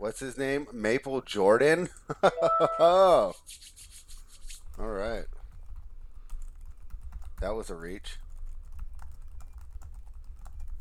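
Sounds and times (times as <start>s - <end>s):
speech: 0.0s - 3.7s, 4.8s - 5.4s, 7.4s - 8.2s
rapid typing on a computer keyboard: 4.6s - 10.7s.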